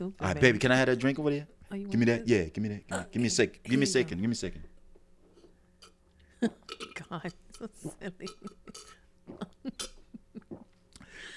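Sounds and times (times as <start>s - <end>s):
speech: 0.0s - 4.7s, 6.4s - 10.0s
short guttural burps: 2.9s - 4.1s, 5.8s - 10.7s.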